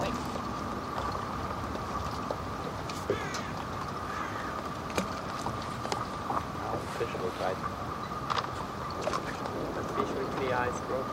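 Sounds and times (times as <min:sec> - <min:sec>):
boat engine droning: 0:00.0 - 0:11.1.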